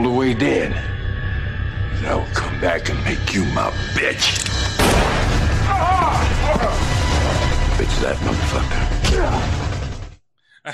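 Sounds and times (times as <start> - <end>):
speech: 0.3 - 1.0, 1.9 - 5.1, 5.7 - 9.6
gunshot in a film scene: 4.8 - 5.5.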